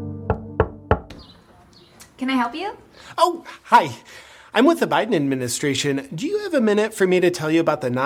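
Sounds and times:
knocking on a door: 0:00.3 - 0:01.2
speech: 0:02.2 - 0:08.0.

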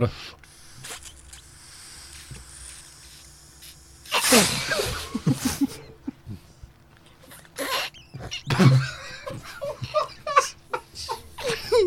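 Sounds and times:
speech: 0:00.0 - 0:00.4
woman blowing air into an inflatable dolphin toy: 0:00.4 - 0:05.1
laughter: 0:04.2 - 0:06.5, 0:07.7 - 0:11.8.

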